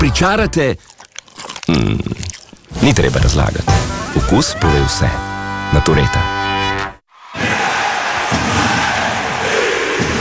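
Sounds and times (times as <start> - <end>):
speech: 0.1 - 1.0, 1.7 - 6.3
hockey crowd roaring and cheering in an arena: 7.1 - 10.2.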